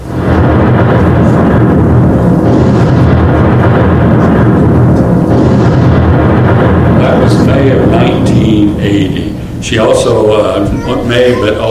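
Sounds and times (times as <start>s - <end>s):
massive volcanic eruption of a mountain roaring: 0.0s - 11.6s
speech: 9.7s - 11.6s.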